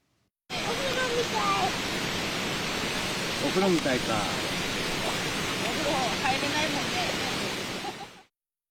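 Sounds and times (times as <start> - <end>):
river water flowing in Yatsushiro City: 0.5 - 8.3.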